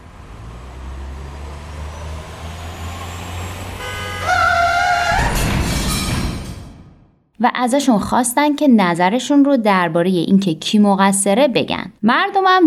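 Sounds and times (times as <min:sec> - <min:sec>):
heavy truck engine rumbling: 0:00.0 - 0:07.0
road noise: 0:00.0 - 0:07.0
loud horn blaring with harmonic tones: 0:03.5 - 0:05.4
speech: 0:07.4 - 0:12.6.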